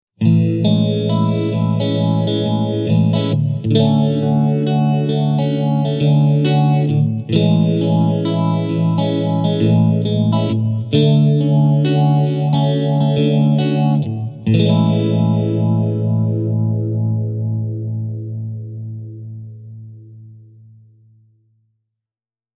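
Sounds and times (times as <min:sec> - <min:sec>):
Blackstar ID Core 40 V2 guitar amplifier clean tone: 0:00.2 - 0:21.3.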